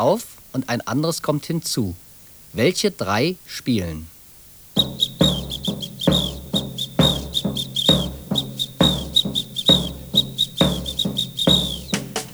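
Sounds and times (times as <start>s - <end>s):
speech: 0.0s - 4.1s, 4.8s - 5.1s
samba whistle blasts in a Latin American samba rhythm: 4.7s - 12.3s
tom-tom drum beats in a Latin American samba rhythm: 4.8s - 12.3s.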